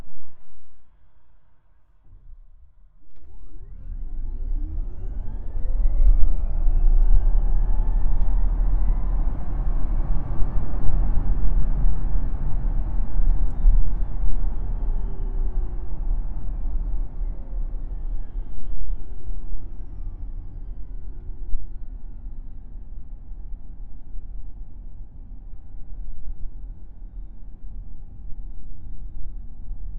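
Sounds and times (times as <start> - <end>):
Tesla X90D electric car cabin noise in normal mode: 3.1 - 19.3.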